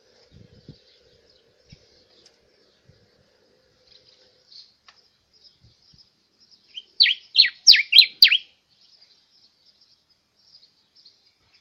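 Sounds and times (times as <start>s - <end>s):
Diuca finch song with loud sharply down-slurred whistles: 6.7s - 8.5s.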